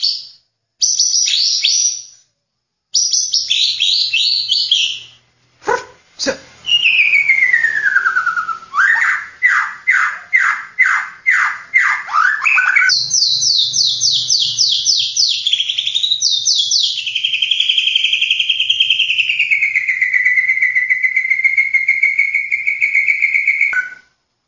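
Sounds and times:
White-rumped shama song with whistles and clicks: 3.0s - 5.2s, 6.6s - 24.2s.

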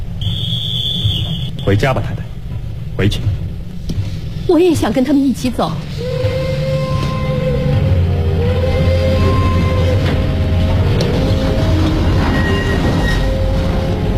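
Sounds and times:
departing train rumbling with clattering wagons: 0.0s - 14.1s
train wheels squealing: 0.2s - 1.7s, 8.5s - 10.3s, 12.0s - 13.6s
speech: 1.7s - 2.2s, 3.0s - 3.4s, 4.5s - 6.0s.

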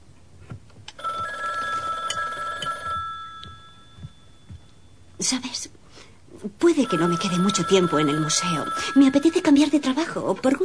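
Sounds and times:
low noise: 0.0s - 10.6s
telephone ringing with bright buzzing tone: 1.0s - 5.0s, 6.7s - 10.2s
speech: 5.2s - 5.8s, 6.4s - 10.6s.

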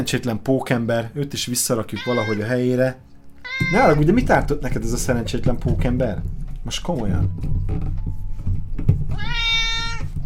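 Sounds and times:
speech: 0.0s - 8.2s
domestic cat drawn-out meow: 1.9s - 2.6s, 3.4s - 4.1s, 9.1s - 10.1s.

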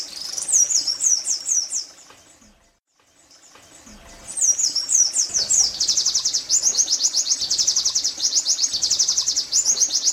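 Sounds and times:
many birds singing together: 0.0s - 10.1s.

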